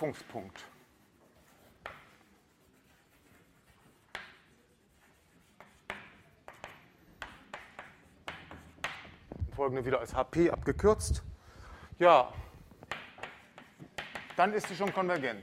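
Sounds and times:
speech: 0.0 - 0.8, 9.6 - 11.3, 12.0 - 12.4, 14.4 - 15.4
handwriting strokes and taps during a mathematics lecture: 0.9 - 9.4, 12.6 - 15.4.

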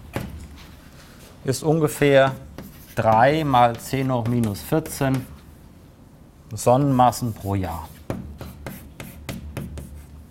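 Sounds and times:
speech: 1.4 - 5.3, 6.5 - 8.0
formula being written by hand in scratchy strokes: 2.3 - 5.4, 6.9 - 10.2.

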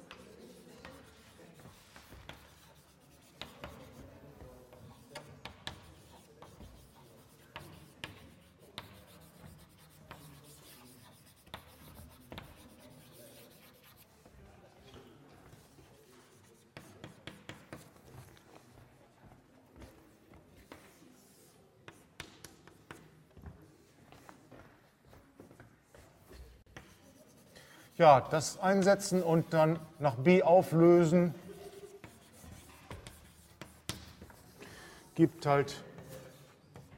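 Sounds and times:
pen writing out the result of a calculation: 0.0 - 14.2, 15.5 - 18.4, 26.6 - 28.0, 31.4 - 34.7
speech: 28.0 - 31.4, 35.2 - 35.9.

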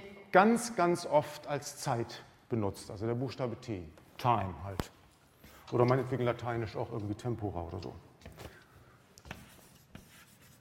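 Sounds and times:
speech: 0.3 - 5.0, 5.7 - 8.1
faint scratching of a function being written on a board: 7.0 - 10.5.

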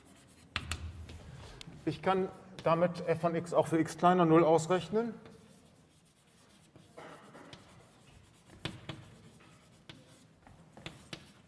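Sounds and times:
pen or chalk strokes of handwriting during a maths lecture: 0.0 - 0.9, 5.2 - 11.4
speech: 1.8 - 5.3.

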